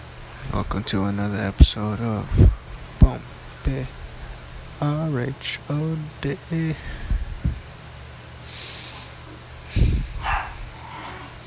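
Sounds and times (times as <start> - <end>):
speech: 0.5 - 4.0, 4.8 - 7.0
dogs barking inside a house: 10.1 - 11.4.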